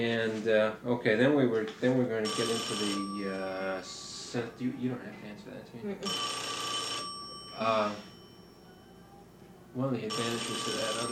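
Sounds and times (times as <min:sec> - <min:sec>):
speech: 0:00.0 - 0:06.5, 0:07.6 - 0:08.1, 0:09.7 - 0:11.0
telephone ringing: 0:02.2 - 0:05.0, 0:06.0 - 0:11.0.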